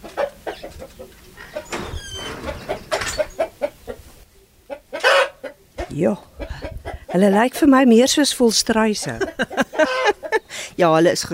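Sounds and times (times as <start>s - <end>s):
Australorp hens clucking in a backyard chicken coop: 0.0s - 7.5s, 9.0s - 10.5s
speech: 6.0s - 6.3s, 7.1s - 9.6s, 10.8s - 11.3s
laughter: 9.0s - 10.4s.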